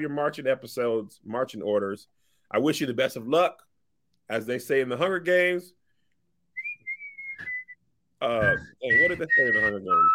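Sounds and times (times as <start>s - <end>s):
speech: 0.0s - 3.7s, 4.3s - 5.8s, 8.2s - 10.1s
person whistling a short clear tune: 6.6s - 7.8s, 8.4s - 10.1s.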